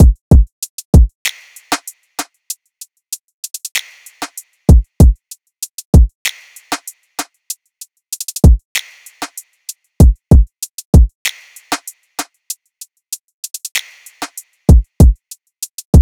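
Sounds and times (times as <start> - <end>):
drum loop at 96 BPM: 0.0 - 1.9, 3.4 - 6.9, 8.1 - 9.4, 10.0 - 11.9, 13.4 - 16.0.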